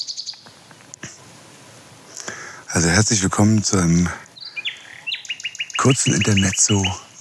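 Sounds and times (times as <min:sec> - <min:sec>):
nightingale singing: 0:00.0 - 0:00.7, 0:02.2 - 0:07.1
speech: 0:02.8 - 0:04.3, 0:05.8 - 0:07.0.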